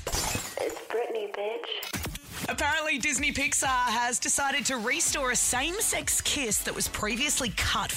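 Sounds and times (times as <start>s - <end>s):
window glass shattering: 0.0s - 0.9s
speech: 1.2s - 1.9s, 2.5s - 7.9s.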